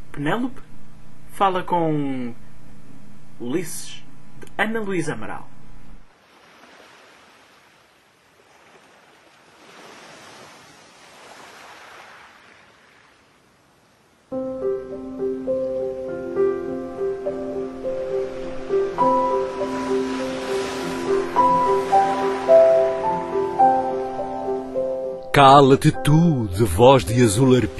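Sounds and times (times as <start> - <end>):
speech: 0.2 - 0.7, 1.4 - 2.4, 3.4 - 5.5, 25.4 - 27.7
soft waves of the Aegean Sea washing in: 6.1 - 25.0
instrumental music: 14.4 - 27.7.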